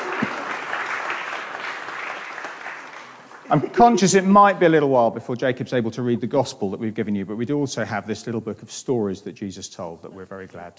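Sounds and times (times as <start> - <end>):
audience applauding: 0.0 - 4.5
speech: 3.5 - 10.7.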